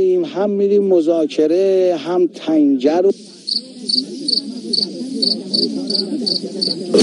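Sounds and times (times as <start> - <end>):
speech: 0.0 - 7.0
cricket chirping: 3.4 - 7.0.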